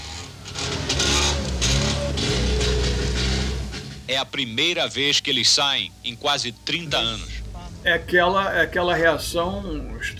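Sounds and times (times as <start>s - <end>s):
Trabant small car engine running: 0.0s - 4.0s
speech: 4.1s - 10.1s.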